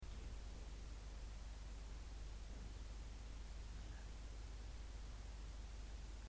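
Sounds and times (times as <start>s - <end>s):
noise: 0.0s - 6.2s.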